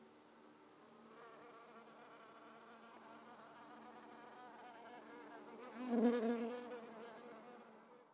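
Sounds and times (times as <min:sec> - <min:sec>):
bee buzzing in a garden: 0:05.6 - 0:07.5.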